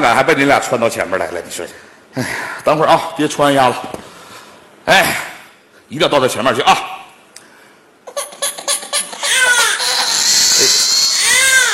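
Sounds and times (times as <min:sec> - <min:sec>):
speech: 0:00.0 - 0:04.1, 0:04.8 - 0:05.3, 0:05.9 - 0:06.9
hungry baby crying: 0:08.1 - 0:11.7.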